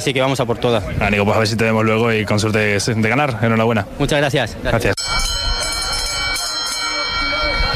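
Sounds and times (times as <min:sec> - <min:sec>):
speech: 0:00.0 - 0:05.0
indistinct crowd voices: 0:00.0 - 0:07.7
bell signalling start of horse race at Sanlúcar: 0:05.0 - 0:07.7.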